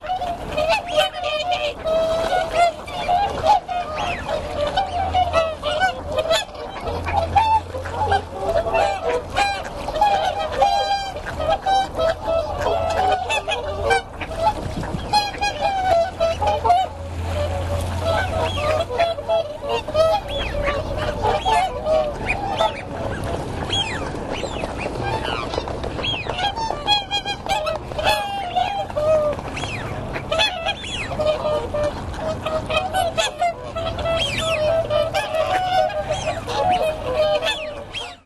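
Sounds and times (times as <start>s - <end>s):
waterfowl: 0.0s - 38.2s.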